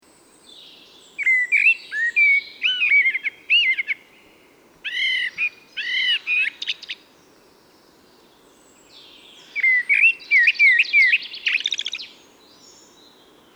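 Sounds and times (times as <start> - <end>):
common blackbird singing mellow whistled notes and scratchy high twittering: 0.5 - 4.0, 4.9 - 7.0, 8.9 - 12.8.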